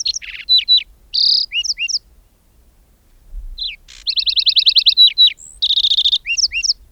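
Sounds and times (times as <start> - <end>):
lark sparrow singing: 0.0 - 2.1, 3.6 - 6.8.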